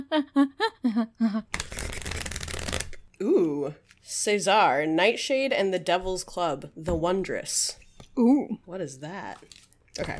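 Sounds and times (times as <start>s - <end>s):
speech: 0.0s - 2.1s, 3.6s - 10.1s
deck of oracle cards being shuffled: 1.5s - 3.0s.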